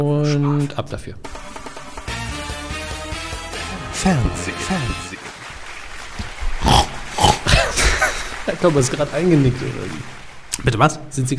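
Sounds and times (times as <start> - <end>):
speech: 0.0 - 1.6, 4.0 - 5.3, 8.5 - 11.3
rough pig-like grunts: 6.6 - 8.0
laughter: 7.1 - 10.3.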